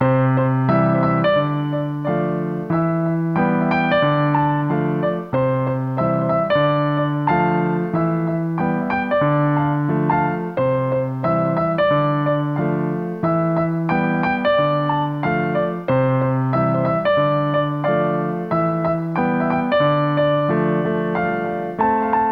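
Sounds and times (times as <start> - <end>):
cheerful jazzy piano melody with delay effect for a film soundtrack: 0.0 - 22.3.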